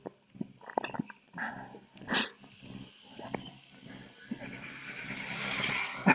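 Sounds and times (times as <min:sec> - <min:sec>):
tractor driving past: 0:02.4 - 0:06.1.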